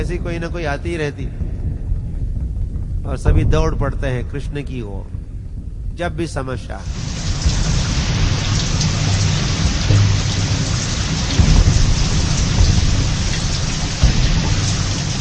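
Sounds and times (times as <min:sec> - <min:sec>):
speech: 0:00.0 - 0:01.5, 0:03.0 - 0:05.2, 0:06.0 - 0:07.2
low thunder rumbling in a thunderstorm: 0:00.0 - 0:15.1
heavy rain pouring in a thunderstorm: 0:06.8 - 0:15.1.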